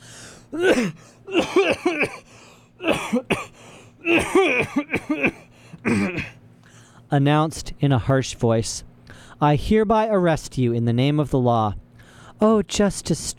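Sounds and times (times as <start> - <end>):
speech: 0.5 - 6.3, 7.1 - 11.8, 12.4 - 13.3
man coughing in a burst after a play: 0.5 - 6.4.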